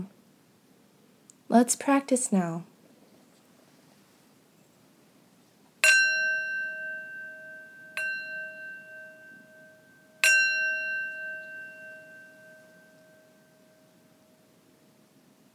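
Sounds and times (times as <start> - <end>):
speech: 1.5 - 2.7
singing bowl struck and ringing: 5.8 - 15.2.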